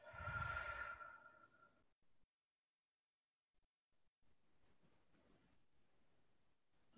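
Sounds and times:
slow deep exhale during breathing exercise: 0.0s - 1.7s.

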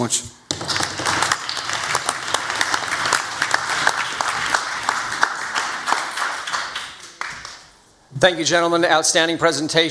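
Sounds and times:
speech: 0.0s - 0.4s, 8.2s - 9.8s
audience at a debate applauding: 0.5s - 7.8s.

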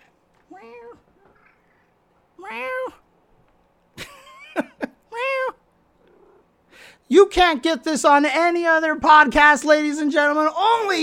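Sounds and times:
speech: 0.5s - 1.1s, 2.4s - 3.0s, 7.1s - 11.0s
cat meowing: 0.5s - 3.0s.

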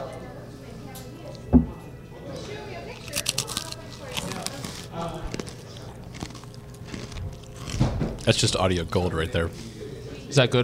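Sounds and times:
low murmur: 0.0s - 10.6s
crunching pretzels being chewed: 2.9s - 9.1s
speech: 8.3s - 9.7s, 10.3s - 10.6s.

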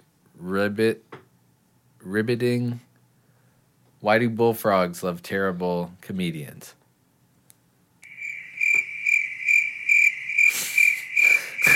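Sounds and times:
speech: 0.4s - 1.1s, 2.0s - 2.9s, 4.0s - 6.8s
crickets chirping: 8.0s - 11.7s.

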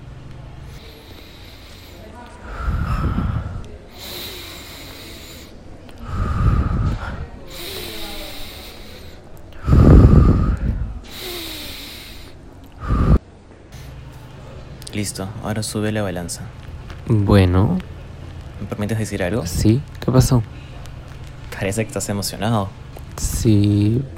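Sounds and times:
deep forceful breathing with hissing inhales and gusty exhales: 0.6s - 13.2s
speech: 15.0s - 17.9s, 18.7s - 20.7s, 21.6s - 24.1s.

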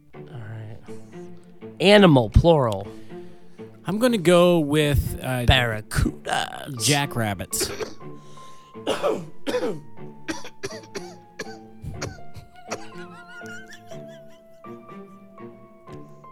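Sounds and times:
speech: 1.8s - 3.0s, 3.9s - 8.0s, 8.9s - 9.9s
heavy coughing: 7.5s - 8.1s, 8.8s - 14.7s
throat clearing: 7.6s - 8.0s, 8.9s - 13.7s
laughter: 12.0s - 15.4s.

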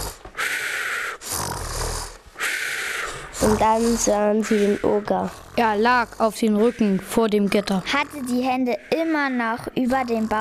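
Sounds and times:
loud snoring: 0.0s - 0.2s, 0.8s - 10.4s
speech: 3.4s - 10.4s.

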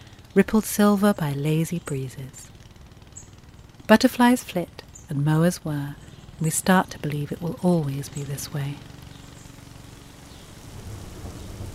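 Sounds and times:
speech: 0.4s - 2.6s, 3.9s - 8.9s
steady rain: 9.6s - 11.7s
rolling thunder: 10.7s - 11.7s.

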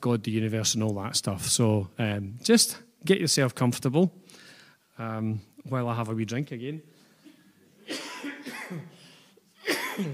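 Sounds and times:
speech: 0.0s - 4.4s, 5.0s - 7.0s, 8.7s - 9.0s, 10.0s - 10.1s
person coughing: 7.3s - 10.1s.

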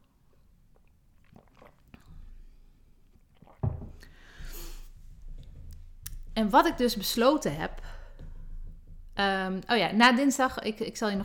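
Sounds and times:
gentle slurping and swallowing of water: 0.3s - 6.2s
soft mouth and lip noises: 0.7s - 6.4s
knock of a cup or bottle being raised: 3.6s - 4.1s
breathing: 4.0s - 4.9s, 7.8s - 8.6s
speech: 6.4s - 8.0s, 9.2s - 11.2s.

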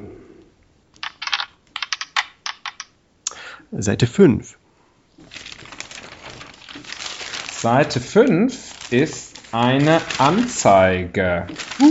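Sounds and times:
dice tumbling and bouncing across a table: 1.0s - 2.9s
speech: 3.7s - 4.6s, 7.6s - 11.8s.

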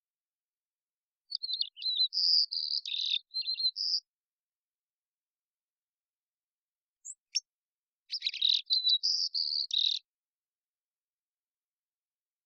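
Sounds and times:
immature White-crowned Sparrow Zonotrichia leucophrys song in the Pacific Northwest, Washington, United States: 1.2s - 4.7s, 6.8s - 10.3s.

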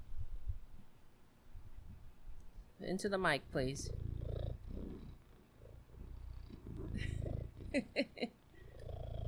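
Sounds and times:
speech: 2.8s - 4.0s, 7.7s - 8.4s
cat purring: 3.4s - 9.2s.

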